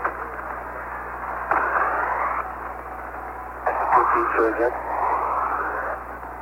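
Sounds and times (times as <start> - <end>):
radio static hissing: 0.0 - 6.3
faint garbled voice radio transmission: 3.6 - 6.1.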